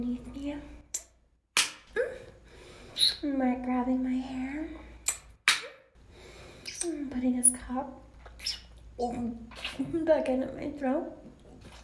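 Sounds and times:
sharp smack of a hand on bare skin: 1.0s - 1.9s, 5.1s - 5.8s
speech: 3.2s - 4.8s, 6.8s - 11.4s.

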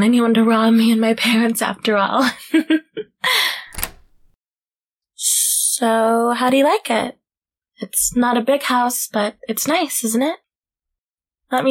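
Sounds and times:
speech: 0.0s - 3.4s, 5.8s - 7.2s, 7.8s - 10.4s
door creaking shut: 3.7s - 4.4s
faint door lock click: 3.7s - 4.4s.

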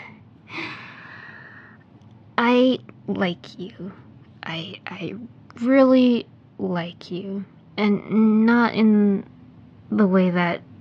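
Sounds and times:
deep breath inhale: 0.5s - 1.8s
speech: 2.6s - 9.3s, 9.9s - 10.7s.

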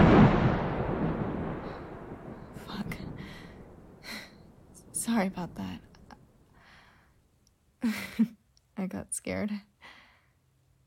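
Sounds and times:
loud thunder crash rolling into a deep rumble: 0.0s - 6.4s
speech: 5.1s - 5.9s, 7.9s - 9.7s.

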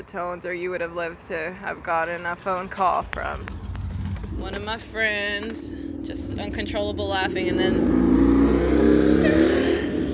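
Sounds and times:
speech: 0.0s - 3.6s, 4.4s - 8.2s
loud motorcycle engine driving past: 3.2s - 10.1s.

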